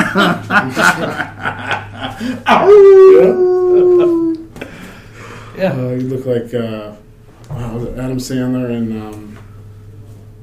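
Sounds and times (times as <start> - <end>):
people chuckling: 0.0 - 5.0
speech: 0.2 - 1.3, 2.2 - 4.2, 5.6 - 9.3
person imitating a wolf howl: 2.5 - 4.5.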